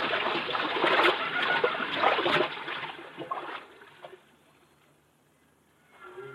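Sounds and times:
heavy water splashing and sloshing while wading across a river: 0.0s - 4.6s.

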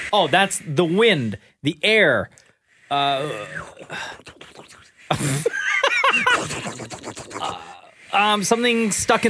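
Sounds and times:
speech: 0.1s - 9.2s
voice imitating a boiling kettle: 3.2s - 5.0s, 6.3s - 7.9s
laughter: 5.1s - 7.7s.

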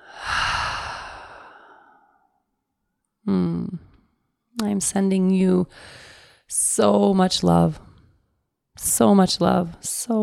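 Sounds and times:
breathy exhale through an open mouth: 0.0s - 2.2s
speech: 3.3s - 3.9s, 4.6s - 7.8s, 8.8s - 10.2s.

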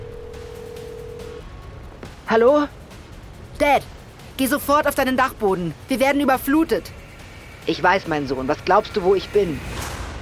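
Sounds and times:
phone line tone: 0.0s - 1.4s
speech: 2.3s - 2.8s, 3.6s - 7.0s, 7.6s - 9.8s.

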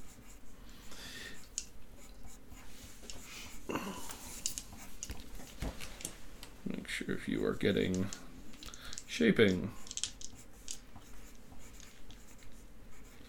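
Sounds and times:
pencil writing on paper: 0.0s - 5.6s, 9.0s - 13.2s
speech: 7.1s - 8.3s, 9.2s - 9.8s.

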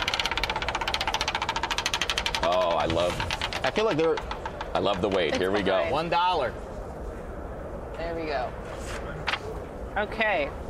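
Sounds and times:
prize wheel spinning with rapid ticking: 0.0s - 5.5s
speech: 2.8s - 6.7s, 8.0s - 8.7s, 10.0s - 10.6s.

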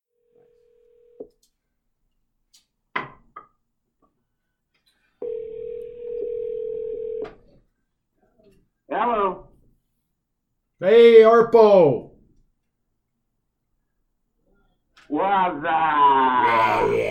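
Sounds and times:
long steady telephone ringing tone: 0.2s - 1.3s, 5.2s - 7.4s
telephone dial tone: 5.2s - 7.4s
speech: 10.8s - 12.0s, 15.3s - 17.0s.

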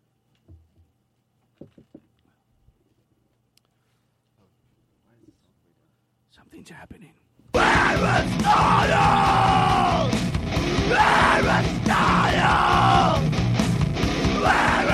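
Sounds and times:
speech: 6.4s - 7.3s
man yelling into studio doors: 7.6s - 10.2s, 10.8s - 13.3s, 14.2s - 14.9s.

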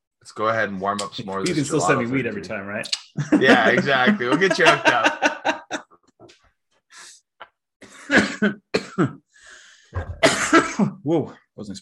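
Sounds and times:
speech: 0.2s - 5.4s, 8.4s - 9.2s, 10.8s - 11.7s
laughter: 3.2s - 5.9s
harsh rasping coughs: 7.8s - 9.2s, 10.0s - 11.0s
throat clearing: 8.1s - 9.2s
short breaths: 9.3s - 10.0s.

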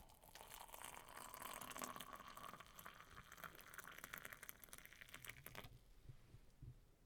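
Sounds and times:
tea pouring into a cup holding milk: 0.0s - 5.8s.

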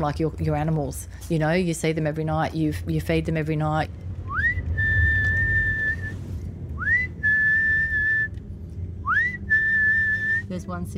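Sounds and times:
speech: 0.0s - 4.1s, 10.6s - 10.9s
low rumbling outdoor background: 0.0s - 10.9s
person whistling to call stray cats: 4.3s - 6.2s, 6.8s - 8.3s, 9.0s - 10.5s.

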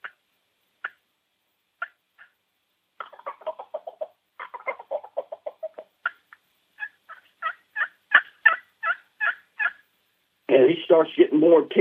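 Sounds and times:
wild turkeys calling from the roost in the morning: 0.8s - 1.0s, 1.8s - 2.4s, 3.0s - 9.9s
speech: 10.7s - 11.7s.

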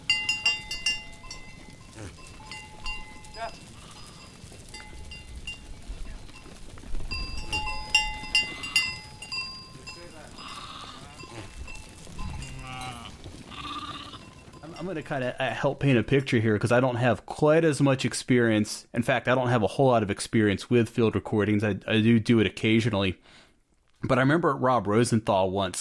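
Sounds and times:
sheep bells clinking and jangling: 0.0s - 13.3s, 14.2s - 16.3s
flock of sheep bleating at a sheep camp: 0.5s - 5.1s, 7.3s - 15.6s
speech: 14.9s - 23.4s, 24.0s - 25.7s.

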